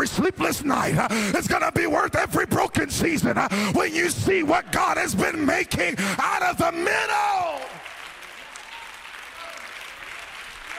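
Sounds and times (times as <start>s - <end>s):
speech: 0.1s - 7.8s
crowd applause: 6.8s - 10.7s.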